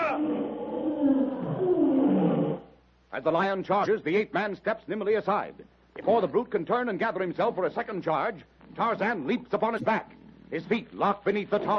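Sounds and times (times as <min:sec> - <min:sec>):
bull ape challenging cry: 0:00.0 - 0:02.7
speech: 0:03.1 - 0:11.7.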